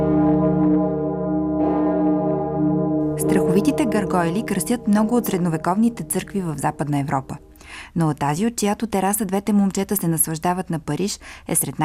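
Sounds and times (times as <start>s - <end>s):
loud church bell ringing: 0.0s - 7.6s
speech: 3.2s - 11.8s.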